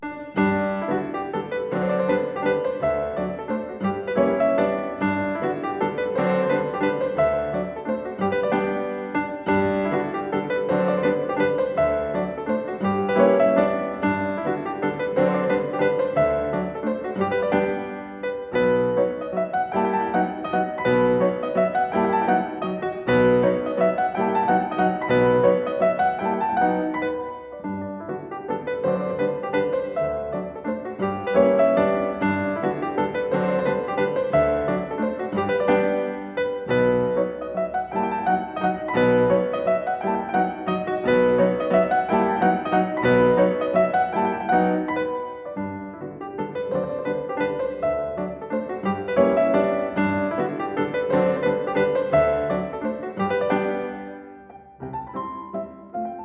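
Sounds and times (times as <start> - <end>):
piano mazurka in G major: 0.0 - 56.2.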